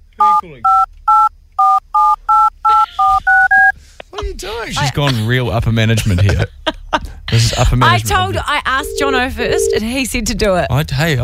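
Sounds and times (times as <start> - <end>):
speech: 0.2 - 0.9, 4.7 - 6.6, 7.4 - 11.2
touch-tone beeps of a phone number being dialed: 0.2 - 3.7, 8.8 - 9.8
laughter: 2.7 - 3.6, 4.2 - 8.5.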